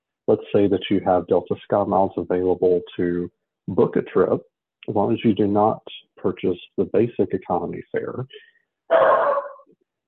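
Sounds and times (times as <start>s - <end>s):
speech: 0.3s - 9.3s
dog barking: 8.9s - 9.7s.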